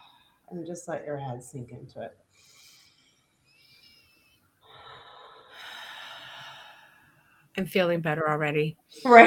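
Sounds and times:
speech: 0:00.5 - 0:02.6, 0:07.6 - 0:09.2
deep airy breathing with exhales through the mouth: 0:02.3 - 0:07.5.

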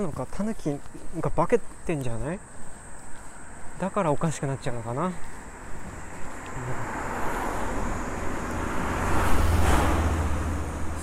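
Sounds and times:
speech: 0:00.0 - 0:02.5, 0:03.8 - 0:05.3, 0:06.6 - 0:07.0
steady high insect-like hiss: 0:00.0 - 0:11.0
car passing: 0:02.4 - 0:11.0.

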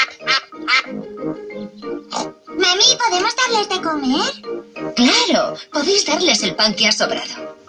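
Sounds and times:
ducks quacking at a pond: 0:00.0 - 0:05.7
speech: 0:03.6 - 0:04.5, 0:05.8 - 0:07.4.

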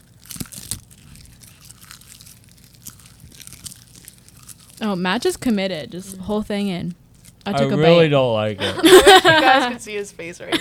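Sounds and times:
crunching of a crisp dried seaweed snack: 0:00.0 - 0:05.4
speech: 0:04.8 - 0:10.5
laughter: 0:08.6 - 0:10.5.

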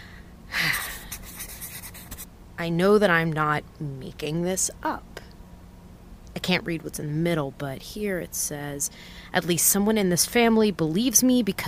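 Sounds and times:
pencil shading over a paper pad: 0:01.1 - 0:02.2
speech: 0:02.6 - 0:05.1, 0:06.4 - 0:11.6.

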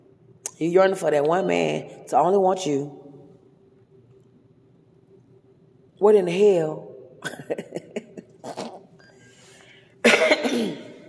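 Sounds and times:
speech: 0:00.6 - 0:03.0, 0:06.0 - 0:07.8
dry coughing: 0:07.2 - 0:08.8, 0:10.0 - 0:11.0
rough throat clearing: 0:07.2 - 0:08.9, 0:10.1 - 0:11.0.

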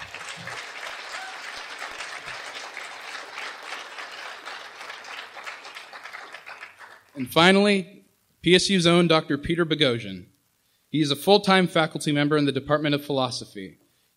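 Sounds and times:
audience applause: 0:00.0 - 0:07.2
speech: 0:07.2 - 0:10.3, 0:10.9 - 0:14.1.

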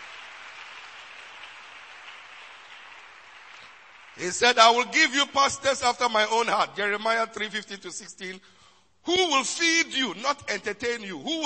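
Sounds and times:
audience clapping for a group of men of God: 0:00.0 - 0:05.2
speech: 0:04.2 - 0:11.4.

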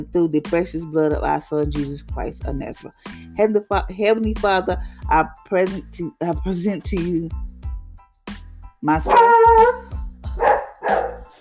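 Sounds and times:
speech: 0:00.0 - 0:07.5, 0:08.8 - 0:09.8
dog barking: 0:09.1 - 0:11.3.

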